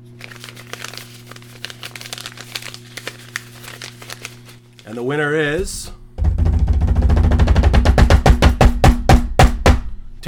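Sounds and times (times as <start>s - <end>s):
paper envelope being handled and torn open: 0.2s - 5.0s
speech: 4.9s - 6.0s
steady low hum: 5.4s - 10.2s.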